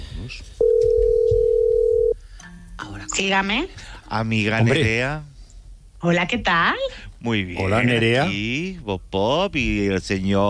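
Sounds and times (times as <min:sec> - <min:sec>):
speech: 0:00.2 - 0:00.6, 0:03.1 - 0:05.3, 0:06.0 - 0:10.4
outgoing telephone call line tone: 0:00.6 - 0:02.2.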